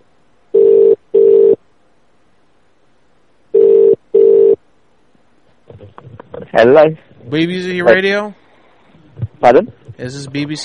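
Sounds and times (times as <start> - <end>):
telephone ringback tone: 0.6 - 1.6, 3.6 - 4.6
speech: 6.6 - 8.4, 9.4 - 10.6.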